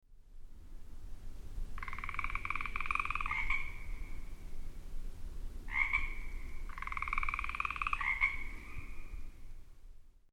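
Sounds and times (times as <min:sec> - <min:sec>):
frogs croaking: 0:01.8 - 0:04.4, 0:05.7 - 0:09.4.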